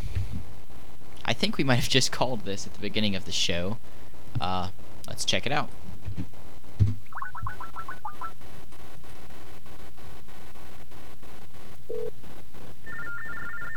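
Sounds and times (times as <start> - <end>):
speech: 1.3 - 6.3
trilling telephone ring on a call placed to a payphone: 7.1 - 8.3, 12.8 - 13.7.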